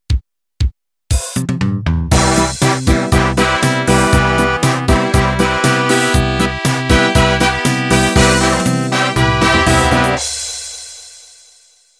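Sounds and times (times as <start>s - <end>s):
pop polka intro music: 0.0s - 11.1s.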